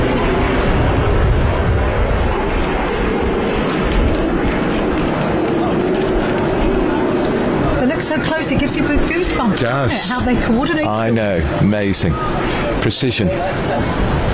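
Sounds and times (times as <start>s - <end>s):
Phenom and Texan aircraft engine roar in flypast overhead: 0.0s - 14.3s
speech: 9.5s - 14.3s.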